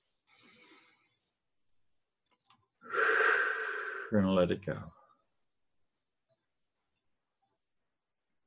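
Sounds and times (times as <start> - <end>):
person breathing in and out deeply: 0.2 - 1.4, 2.8 - 4.2
speech: 4.1 - 5.0.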